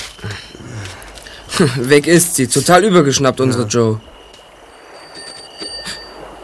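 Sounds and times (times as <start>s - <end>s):
outdoor hiss: 0.0s - 6.4s
speech: 1.6s - 4.1s
bicycle bell ringing: 4.7s - 6.4s.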